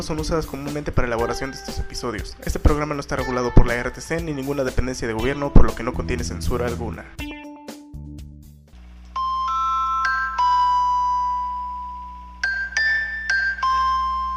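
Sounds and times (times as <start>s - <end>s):
speech: 0.0s - 7.4s
mobile phone ringtone with electronic bell-like melody: 9.2s - 14.3s.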